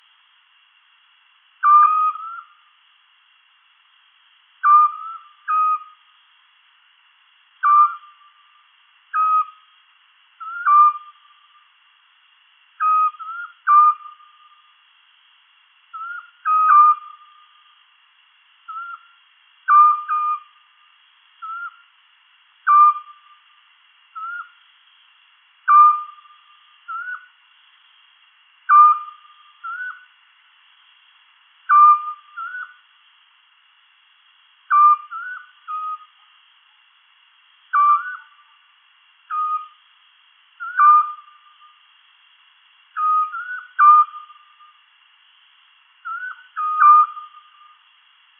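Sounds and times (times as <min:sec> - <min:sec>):
scops owl Otus scops calling: 0:01.6 - 0:02.7, 0:04.6 - 0:06.1, 0:07.6 - 0:09.8, 0:10.4 - 0:11.7, 0:12.8 - 0:14.8, 0:15.9 - 0:17.8, 0:18.7 - 0:20.7, 0:21.4 - 0:21.9, 0:22.6 - 0:24.6, 0:25.6 - 0:27.4, 0:28.7 - 0:30.2, 0:31.7 - 0:32.9, 0:34.7 - 0:36.3, 0:37.7 - 0:38.6, 0:39.3 - 0:39.9, 0:40.6 - 0:41.8, 0:42.9 - 0:44.8, 0:46.0 - 0:47.8.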